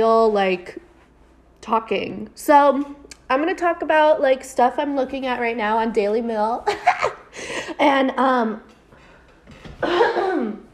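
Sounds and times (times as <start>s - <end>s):
speech: 0.0s - 0.8s, 1.6s - 8.7s, 9.8s - 10.6s
harsh cough turned away from the microphone: 9.8s - 10.7s.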